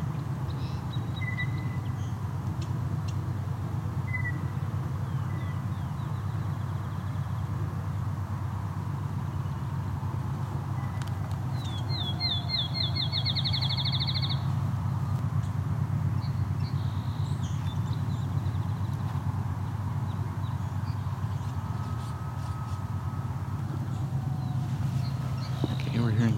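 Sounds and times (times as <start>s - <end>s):
field sparrow song: 0.0s - 26.3s
low outdoor rumble: 0.0s - 26.3s.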